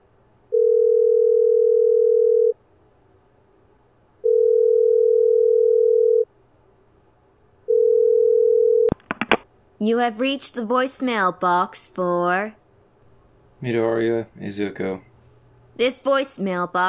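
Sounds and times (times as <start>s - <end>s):
phone line ringback tones on an outgoing call: 0.5s - 2.5s, 4.2s - 6.2s, 7.7s - 8.9s
speech: 9.8s - 12.6s, 13.6s - 15.1s, 15.8s - 16.8s.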